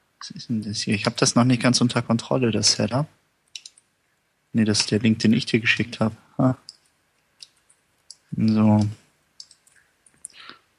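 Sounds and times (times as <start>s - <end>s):
speech: 0.2s - 3.2s, 4.5s - 6.7s, 8.3s - 9.0s
keyboard typing: 3.5s - 3.8s, 6.6s - 10.5s
mouse clicking: 3.5s - 3.9s, 6.6s - 10.6s.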